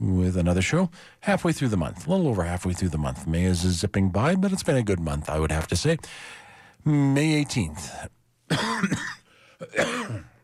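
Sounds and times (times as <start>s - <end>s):
speech: 0.3s - 10.3s
rough throaty coughing with a croaky voice: 8.5s - 10.4s.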